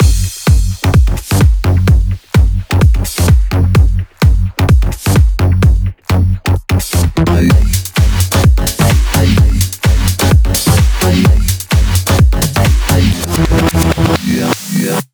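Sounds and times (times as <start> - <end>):
128 BPM dance music mix: 0.0 - 15.1.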